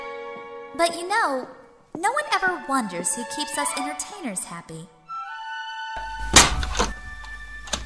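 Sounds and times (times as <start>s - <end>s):
speech: 0.7s - 5.0s
door giving a softer clack: 6.0s - 7.8s
door opening with a sharp thunk: 6.2s - 7.0s.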